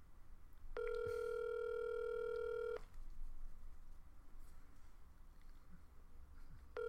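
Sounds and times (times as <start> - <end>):
telephone call ringing out before voicemail: 0.8 - 2.8.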